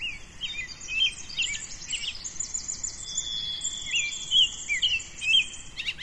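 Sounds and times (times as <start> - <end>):
dense dawn chorus of birdsong in a forest: 0.0 - 6.0.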